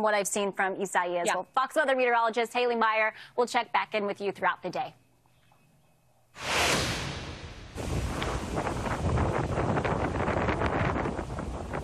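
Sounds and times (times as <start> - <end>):
speech: 0.0 - 5.0, 6.4 - 6.8
loud roaring wind gusts buffeting the microphone: 7.1 - 11.8
heavy rain pouring steadily: 7.7 - 11.8.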